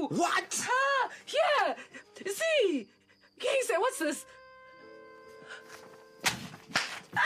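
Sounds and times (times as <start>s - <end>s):
speech: 0.1s - 4.3s
hand slapping someone: 6.2s - 7.1s.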